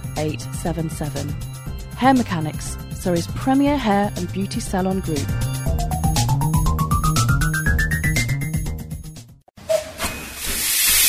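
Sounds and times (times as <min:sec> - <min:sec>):
speech: 0:00.2 - 0:05.4
rhythmic chugging with rising tone: 0:05.6 - 0:08.6
steam locomotive hissing steam: 0:09.7 - 0:11.0.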